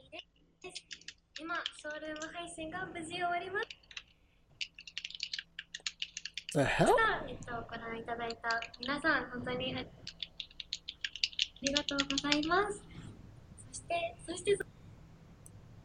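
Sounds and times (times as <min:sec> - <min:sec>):
typing on a computer keyboard: 0:00.0 - 0:02.4, 0:03.6 - 0:06.6, 0:08.2 - 0:09.0, 0:10.0 - 0:12.6
speech: 0:00.7 - 0:03.8, 0:06.5 - 0:10.1, 0:11.6 - 0:13.0, 0:13.8 - 0:14.7.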